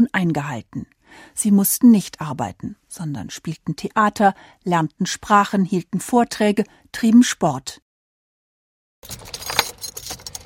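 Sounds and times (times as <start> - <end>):
speech: 0.0 - 7.8, 9.0 - 9.6
keys jangling: 9.0 - 10.4.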